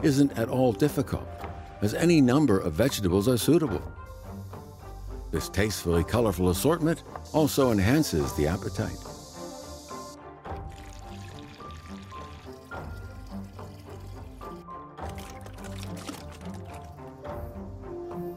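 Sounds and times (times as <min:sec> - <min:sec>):
speech: 0:00.0 - 0:04.2, 0:05.3 - 0:09.1
cooling boiled water pouring into a pickling pot: 0:09.0 - 0:17.3.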